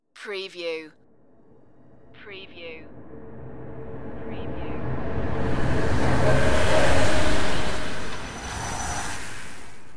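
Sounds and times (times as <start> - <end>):
dimension glitch flyby whoosh: 4.1 - 9.9.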